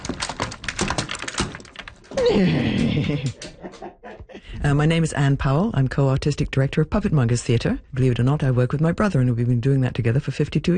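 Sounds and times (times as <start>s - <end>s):
wooden chair marionette walking with hollow clacks and thumps: 0.0s - 3.6s
speech: 2.2s - 4.0s, 4.6s - 10.7s
laughter: 2.2s - 4.5s.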